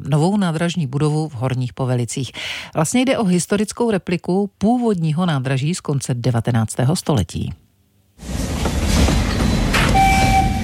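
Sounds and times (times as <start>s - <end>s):
speech: 0.1s - 7.6s
steam train arriving on a narrow-gauge railway: 8.2s - 10.6s.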